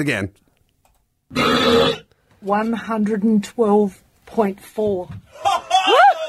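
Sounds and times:
speech: 0.0s - 0.4s, 1.3s - 5.6s
loud deep roar-like burp: 1.3s - 2.0s
person chuckling: 5.3s - 6.2s.

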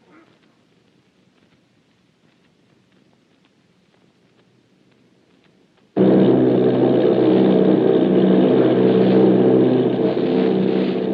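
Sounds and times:
heavy propeller engines of army bombing planes droning off Bayonne New Jersey: 6.0s - 11.1s.

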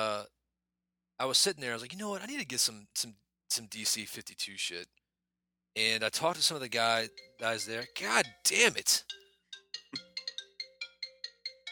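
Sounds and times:
speech: 1.2s - 5.0s, 5.8s - 9.2s
phone ringtone with a bright electronic melodic pattern: 7.1s - 11.7s.

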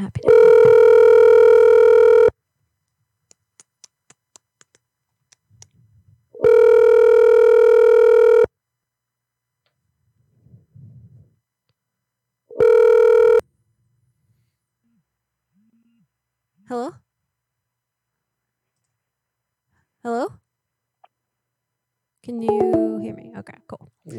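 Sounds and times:
ringing tones of an outgoing telephone call: 0.2s - 2.4s, 6.4s - 8.5s, 12.6s - 13.4s.

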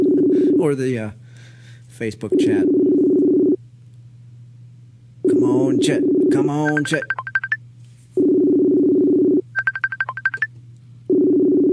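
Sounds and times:
low hum: 0.0s - 11.7s
speech: 0.6s - 1.2s, 2.0s - 2.9s, 5.3s - 7.2s
steady dial tone: 2.7s - 3.6s, 6.1s - 7.6s, 8.2s - 10.5s, 11.1s - 11.7s
telephone keypad tones: 6.6s - 7.6s, 8.7s - 10.5s.

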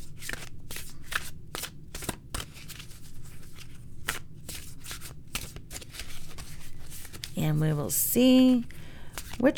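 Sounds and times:
deck of oracle cards shuffled with papery riffling: 0.1s - 7.8s, 8.5s - 9.5s
speech: 7.4s - 8.8s, 9.4s - 9.5s.

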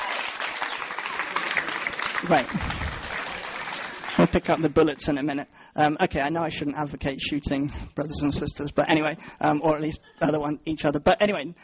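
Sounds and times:
audience applause for volunteers: 0.0s - 4.8s
speech: 2.2s - 3.1s, 4.2s - 11.6s.

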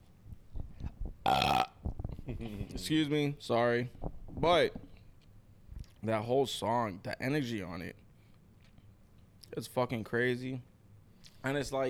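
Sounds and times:
speech: 1.3s - 1.7s, 2.3s - 4.8s, 6.0s - 8.0s, 9.6s - 10.7s, 11.4s - 11.8s
loud drawn-out burp: 1.3s - 1.8s.

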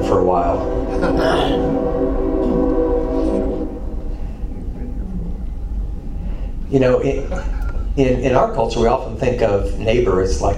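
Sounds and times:
train horn sounding in harmonic tones: 0.0s - 4.8s
train rumbling past: 0.0s - 10.5s
speech: 0.1s - 2.6s, 6.7s - 10.5s.

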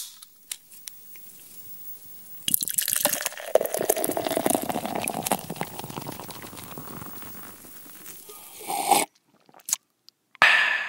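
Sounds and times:
drinks being poured into cups: 2.2s - 9.8s.

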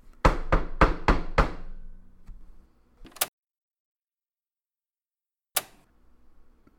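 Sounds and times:
knocking on a door: 0.2s - 1.8s.

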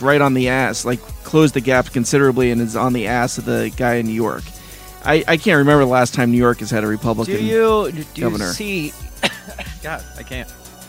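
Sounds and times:
speech: 0.0s - 10.6s
person coughing raspily: 7.4s - 8.6s, 9.2s - 9.9s
throat clearing grunts: 8.2s - 8.6s, 9.2s - 9.9s.

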